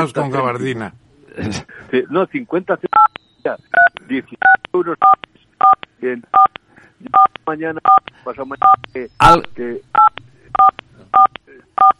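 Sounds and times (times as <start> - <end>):
speech: 0.0 - 11.9
electronic telephone keypad tones: 3.8 - 5.8, 6.4 - 6.6, 7.2 - 8.8, 10.0 - 11.9.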